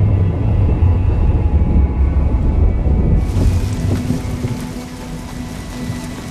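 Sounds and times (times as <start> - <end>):
deep rumbling: 0.0 - 6.2
steady heavy rain pouring: 3.1 - 6.2.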